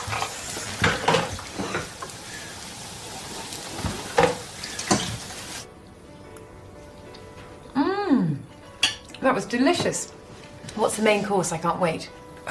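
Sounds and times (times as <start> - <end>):
onions frying in a pan: 0.0 - 5.7
speech: 9.3 - 10.2, 10.8 - 12.4.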